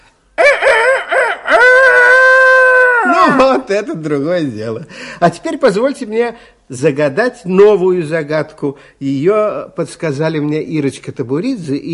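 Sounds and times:
human voice imitating a rooster crowing: 0:00.4 - 0:03.6
speech: 0:03.3 - 0:11.9.

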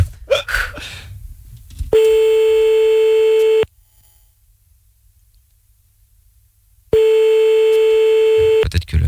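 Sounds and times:
telephone ringing tone of an outgoing call: 0:02.0 - 0:03.7, 0:07.0 - 0:08.6.

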